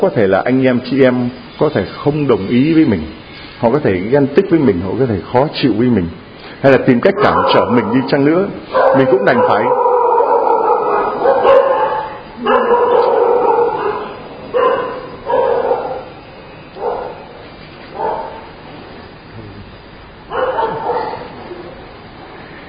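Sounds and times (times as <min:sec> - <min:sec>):
speech: 0:00.0 - 0:09.9
dog barking loudly: 0:07.1 - 0:16.2, 0:16.8 - 0:17.2, 0:17.9 - 0:18.5, 0:20.3 - 0:21.8.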